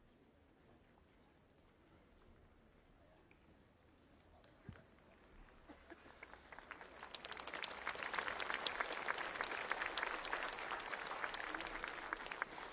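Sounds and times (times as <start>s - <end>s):
audience applause: 5.5s - 12.7s.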